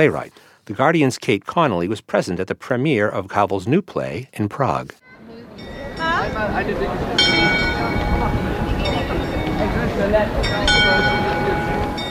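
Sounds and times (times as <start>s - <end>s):
speech: 0.0s - 5.0s, 5.6s - 8.4s, 10.0s - 11.2s
murmur of a large outdoor crowd: 5.0s - 12.1s
ornate astronomical clock in Old Town Square chiming: 5.6s - 12.1s.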